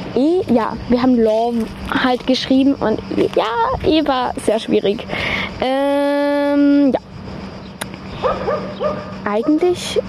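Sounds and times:
low hum: 0.0 - 10.0
speech: 0.2 - 7.0, 8.2 - 10.0
sharp click: 7.8 - 8.0
dog barking: 8.2 - 9.6.

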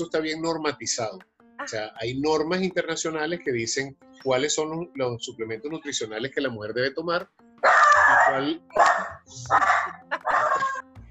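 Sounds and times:
speech: 0.0 - 10.1
female dog barking: 7.6 - 10.8.

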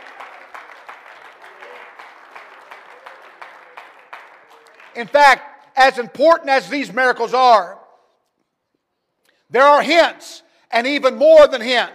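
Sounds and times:
crowd noise: 0.0 - 5.1
audience clapping hands in a steady unified rhythm: 0.0 - 5.8
speech: 5.0 - 7.8, 9.5 - 11.9.

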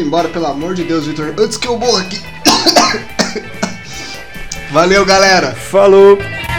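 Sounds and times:
speech: 0.0 - 3.6, 4.7 - 6.4
harsh coughs after choking: 2.4 - 4.0.

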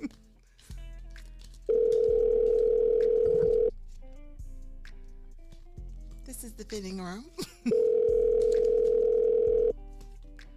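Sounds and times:
loud steady electronic ringback tone of a phone call to a store: 1.7 - 3.7, 7.7 - 9.7
speech: 6.7 - 7.9.

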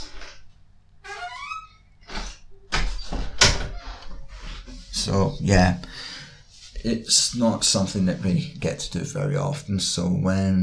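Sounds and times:
door being shut at home: 1.0 - 4.4
speech: 5.0 - 6.1, 6.8 - 10.6.

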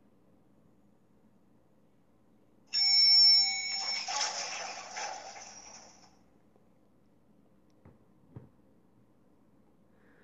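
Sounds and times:
elevator arrival beep as a bright bell-like chime: 2.7 - 4.8.

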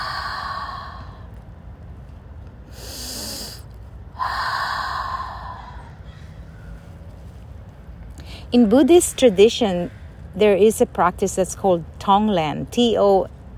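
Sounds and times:
deep breaths in and out during a guided relaxation exercise: 0.0 - 1.4, 2.6 - 6.5
speech: 8.5 - 13.4.

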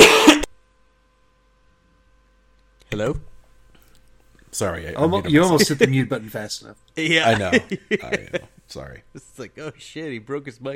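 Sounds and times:
person coughing: 0.0 - 0.5
speech: 3.0 - 3.3, 4.6 - 10.7
laughter: 5.3 - 6.1, 7.1 - 8.6.

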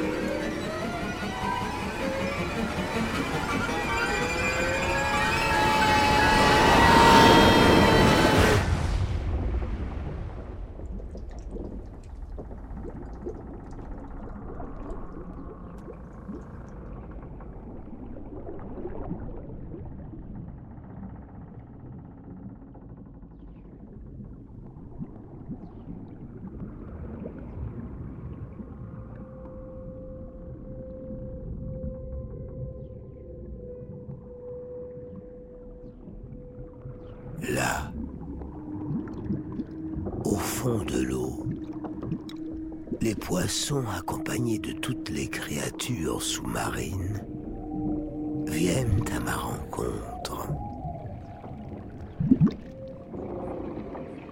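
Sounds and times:
low underwater rumble: 0.0 - 54.2
huge sea wave crashing over a small boat: 5.1 - 10.6
speech: 43.5 - 47.3, 48.6 - 50.6.

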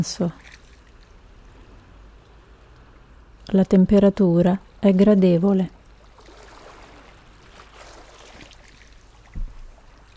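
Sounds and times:
speech: 0.0 - 0.6, 3.5 - 5.8
sea water lapping: 0.4 - 3.4, 5.7 - 10.1
low knock: 9.4 - 9.6.

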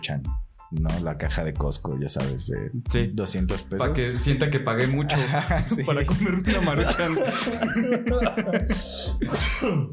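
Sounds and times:
speech: 0.0 - 9.9
loud laughter: 5.1 - 8.8
harsh coughs: 6.8 - 7.9, 8.6 - 9.9.

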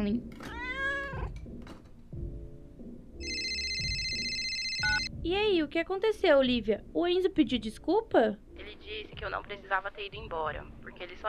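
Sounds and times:
speech: 0.0 - 0.5, 5.3 - 11.2
cat meowing: 0.4 - 1.4
electronic phone ringtone: 3.2 - 5.1.

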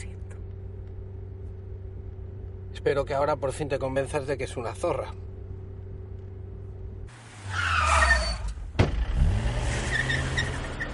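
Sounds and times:
car engine humming in the middle of a road: 0.0 - 10.9
speech: 2.8 - 5.3
hiss of car tires skidding while braking: 7.1 - 10.9.

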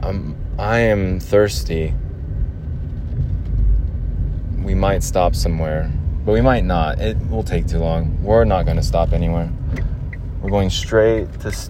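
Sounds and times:
speech: 0.0 - 2.0, 4.6 - 11.6
car interior road noise rumble: 0.0 - 11.6.

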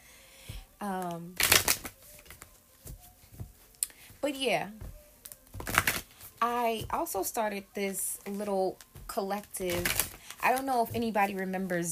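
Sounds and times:
speech: 0.8 - 1.7, 4.2 - 4.8, 6.4 - 11.9
deck of cards riffle-shuffled: 1.4 - 3.4, 5.3 - 6.2.

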